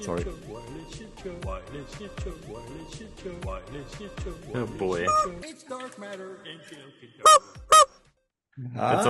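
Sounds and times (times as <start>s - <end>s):
speech: 0.0s - 7.6s, 8.6s - 9.0s
chicken squawking: 5.0s - 5.4s, 7.3s - 7.9s.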